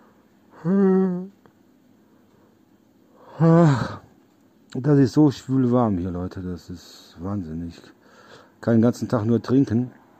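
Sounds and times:
person yawning on camera: 0.5s - 1.3s, 3.2s - 4.1s
speech: 0.6s - 0.9s, 3.4s - 3.9s, 4.8s - 8.0s, 8.6s - 10.0s.

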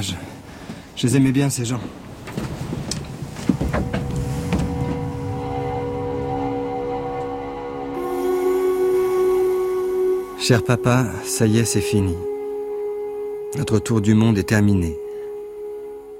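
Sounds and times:
speech: 0.0s - 0.3s, 1.0s - 2.0s, 10.5s - 12.3s, 13.5s - 15.0s
sailboat engine starting: 2.1s - 13.5s.

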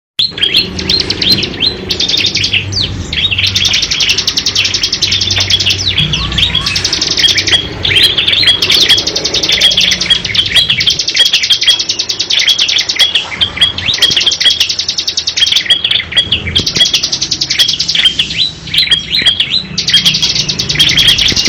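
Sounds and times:
lovebird long continuous rattling chatter song: 0.4s - 21.4s.

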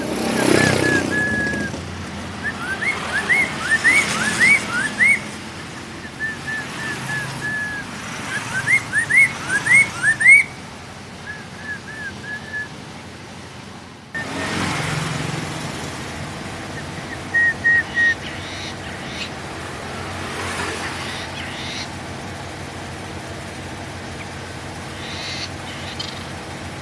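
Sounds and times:
traffic hum: 0.0s - 26.8s
Hwamei singing bright rising whistles: 0.3s - 1.8s, 2.4s - 5.4s, 6.0s - 10.6s, 11.2s - 12.8s, 16.7s - 19.3s.

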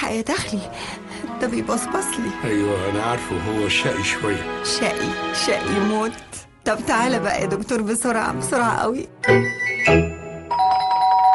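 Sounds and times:
speech: 0.0s - 10.1s
house doorbell ringing: 9.3s - 11.3s.

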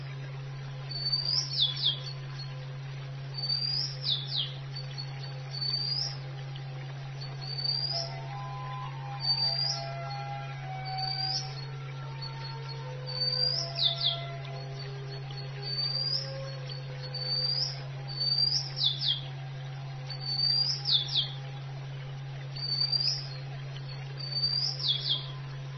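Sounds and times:
steady low electrical hum: 0.0s - 25.7s
Oriental magpie-robin song: 0.9s - 2.5s, 3.4s - 6.2s, 7.2s - 19.3s, 20.1s - 21.4s, 22.6s - 23.4s, 24.2s - 25.4s.

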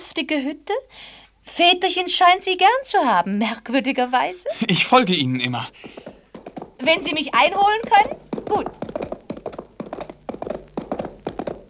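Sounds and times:
speech: 0.2s - 6.0s, 6.8s - 8.9s
hoofbeats of horses galloping ridden hard: 4.6s - 11.6s.

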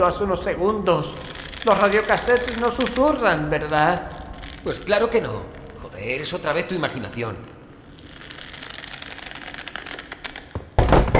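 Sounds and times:
speech: 0.0s - 7.5s
chair lying on the floor stumbled over: 10.6s - 11.1s.

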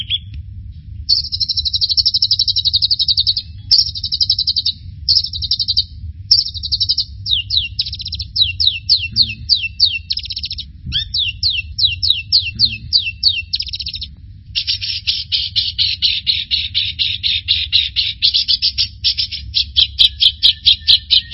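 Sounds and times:
bird singing: 0.0s - 0.3s, 1.1s - 21.3s
low background hum: 0.0s - 21.3s.

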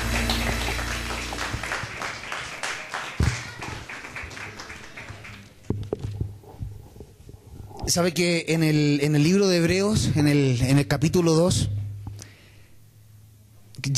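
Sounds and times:
church congregation applauding in praise: 0.0s - 5.7s
speech: 7.9s - 11.8s.

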